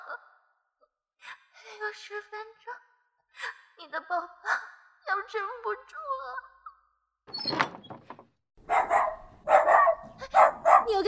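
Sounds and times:
speech: 0:01.8 - 0:06.5, 0:10.9 - 0:11.0
dog barking: 0:08.6 - 0:11.0.

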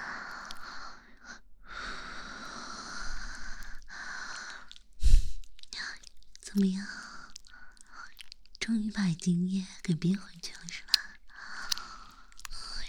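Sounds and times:
slow deep breathing: 0:00.0 - 0:05.4, 0:11.3 - 0:12.8
speech: 0:06.6 - 0:07.0, 0:08.7 - 0:10.9.

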